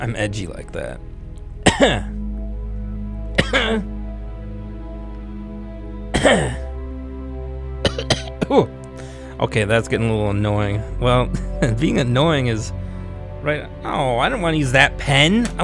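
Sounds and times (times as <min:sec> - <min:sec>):
speech: 0:00.0 - 0:01.1, 0:01.8 - 0:02.1, 0:03.5 - 0:04.0, 0:06.2 - 0:06.6, 0:08.5 - 0:12.8, 0:13.4 - 0:15.6
steady low hum: 0:00.0 - 0:15.6
person coughing: 0:01.6 - 0:02.1, 0:03.4 - 0:03.9, 0:06.1 - 0:06.7, 0:07.8 - 0:08.7.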